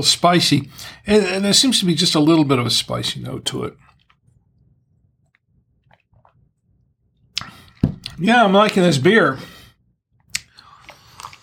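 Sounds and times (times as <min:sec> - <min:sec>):
speech: 0:00.0 - 0:03.9, 0:08.2 - 0:09.5
chewing a meatball: 0:03.7 - 0:04.6, 0:05.2 - 0:06.6, 0:10.2 - 0:11.4.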